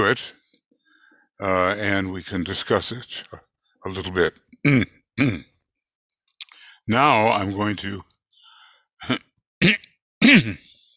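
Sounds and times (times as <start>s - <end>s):
speech: 0.0s - 0.4s, 1.4s - 5.5s, 6.9s - 8.1s, 9.0s - 9.2s, 10.3s - 10.6s
throat clearing: 4.7s - 5.4s, 9.0s - 10.7s.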